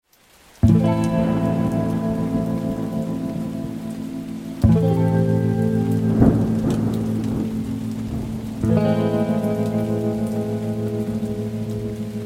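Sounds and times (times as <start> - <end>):
electric guitar strumming: 0.6 - 12.2.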